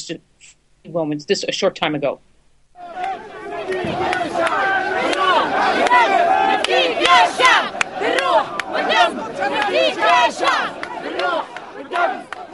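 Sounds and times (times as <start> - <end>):
speech: 0.1 - 2.3
large protest crowd shouting slogans: 2.8 - 12.5.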